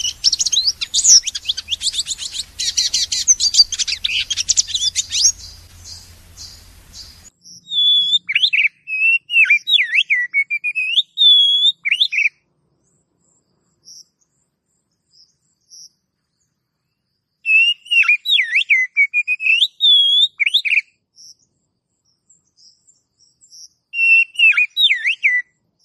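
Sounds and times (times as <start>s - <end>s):
low hum: 0.0s - 7.3s
Oriental magpie-robin song: 0.0s - 12.4s, 17.5s - 21.4s, 22.4s - 25.8s.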